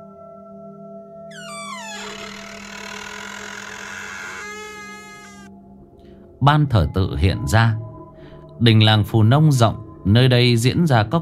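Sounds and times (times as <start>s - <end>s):
old wooden door of a village communal hall creaking open at night: 1.3s - 5.5s
speech: 6.4s - 7.9s, 8.6s - 11.1s.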